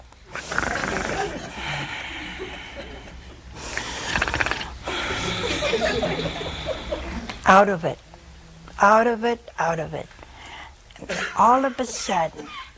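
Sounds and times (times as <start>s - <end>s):
voice imitating loud raspy snoring: 0.3s - 1.4s, 4.0s - 5.4s
laughter: 0.8s - 3.4s, 4.9s - 7.4s
speech: 7.5s - 8.0s, 8.8s - 10.2s, 11.1s - 12.6s.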